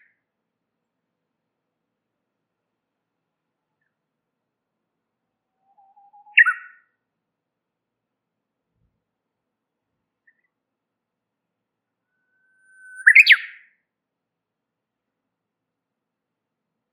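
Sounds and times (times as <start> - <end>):
warbler chirping and twittering: 12.4 - 13.5.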